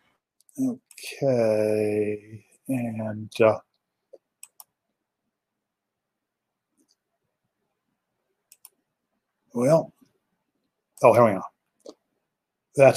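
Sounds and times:
speech: 0.6 - 3.7, 9.6 - 10.0, 11.0 - 11.5, 12.8 - 12.9
mouse clicks on a computer share button: 4.1 - 4.8, 8.5 - 8.8.

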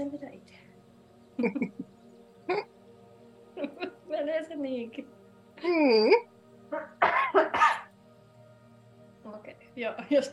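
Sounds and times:
speech: 1.4 - 1.9, 4.4 - 7.7, 9.8 - 10.3
harsh chesty coughing: 6.7 - 7.9.

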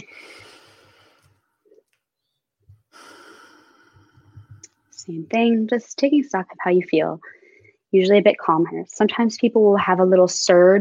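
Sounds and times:
slow deep breathing: 0.0 - 1.4, 2.9 - 4.8
speech: 5.0 - 10.7.

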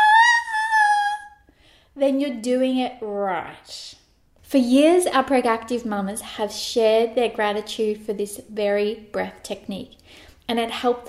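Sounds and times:
high-pitched sung vocal tone: 0.0 - 1.4
speech: 2.0 - 11.0.

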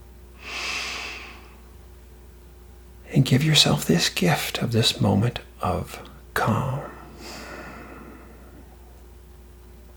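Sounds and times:
breathing in and out through the nose: 0.4 - 1.6, 7.1 - 8.6
speech: 3.2 - 6.9.

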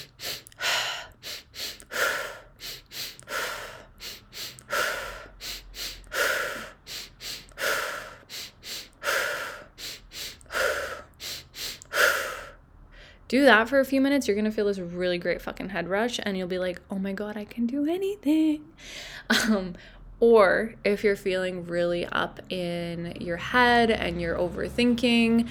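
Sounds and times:
breathing exercise with two sniffing nose inhales and a mouth exhale: 0.0 - 13.3
speech: 13.3 - 25.4.

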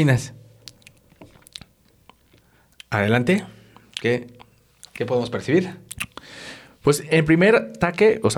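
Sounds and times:
speech: 0.0 - 0.4, 2.9 - 4.4, 5.0 - 8.3
person sipping wine during tasting: 0.6 - 5.1, 5.8 - 6.8.

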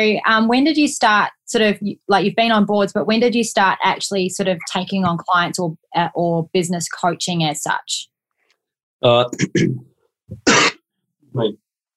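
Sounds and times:
speech: 0.0 - 8.1, 9.0 - 10.7, 11.4 - 11.6
person clearing their throat: 9.3 - 10.8
person coughing: 9.4 - 10.8.

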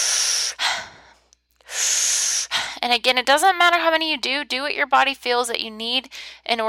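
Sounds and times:
deep forceful breaths in a breathing exercise: 0.0 - 2.8
speech: 2.8 - 6.6.

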